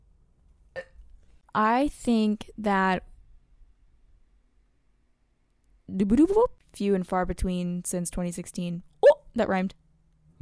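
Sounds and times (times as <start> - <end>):
person burping: 0.7 - 1.0
speech: 1.6 - 3.1, 5.9 - 9.8.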